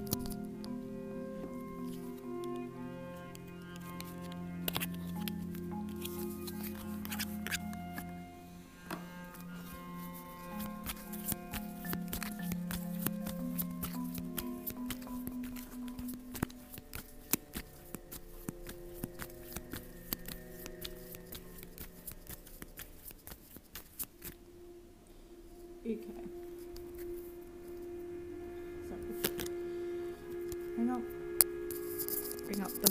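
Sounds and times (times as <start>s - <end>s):
soft sustained musical drone: 0.0s - 32.9s
tarot cards being shuffled and drawn: 3.6s - 8.2s, 8.9s - 24.4s, 31.7s - 32.9s.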